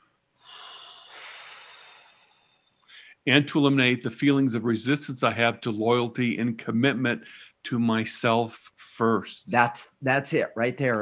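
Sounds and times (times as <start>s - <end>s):
person taking a long slow breath: 0.4s - 3.2s
speech: 3.2s - 11.0s.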